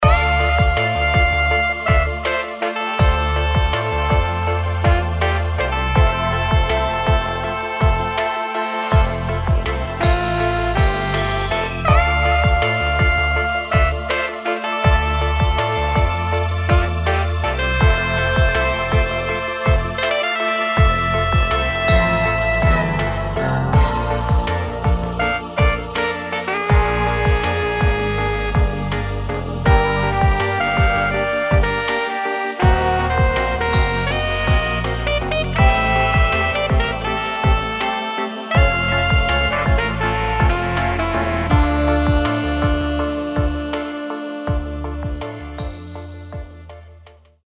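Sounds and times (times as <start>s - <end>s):
alto saxophone pop music: 0.0s - 47.4s.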